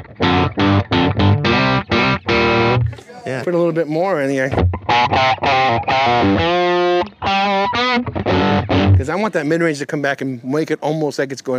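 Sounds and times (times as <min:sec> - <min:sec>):
distorted electric guitar chords through an amp with reverb removed: 0:00.0 - 0:03.0, 0:04.4 - 0:09.1
speech: 0:03.5 - 0:08.1, 0:09.0 - 0:11.5.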